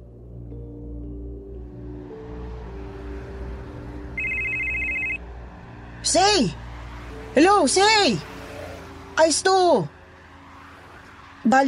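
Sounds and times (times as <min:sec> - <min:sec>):
low drone of sustained tones: 0:00.0 - 0:06.0
telephone electronic trill during a call made from a car: 0:04.2 - 0:05.2
speech: 0:06.0 - 0:06.6, 0:07.4 - 0:08.3, 0:09.2 - 0:09.9, 0:11.4 - 0:11.6.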